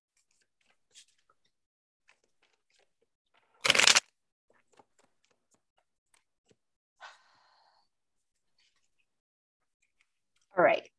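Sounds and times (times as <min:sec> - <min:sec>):
tarot cards being shuffled: 0:03.6 - 0:04.0
speech: 0:10.6 - 0:10.9.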